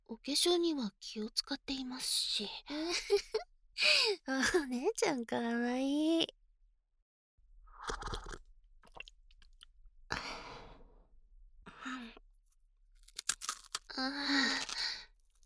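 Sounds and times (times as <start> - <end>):
speech: 0.1 - 6.4, 7.8 - 8.4, 14.0 - 14.7
crunching rice crackers (senbei) being bitten and chewed: 13.0 - 15.4.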